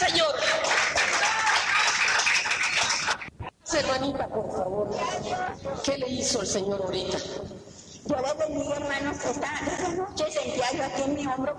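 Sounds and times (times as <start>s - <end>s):
audience applauding: 0.2s - 3.3s
speech: 4.0s - 11.5s.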